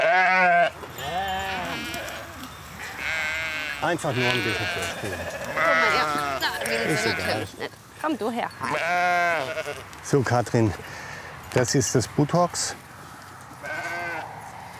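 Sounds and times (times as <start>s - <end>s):
sheep bleating: 0.0s - 7.6s, 8.6s - 10.0s, 13.6s - 14.4s
speech: 3.8s - 11.0s, 11.6s - 12.8s.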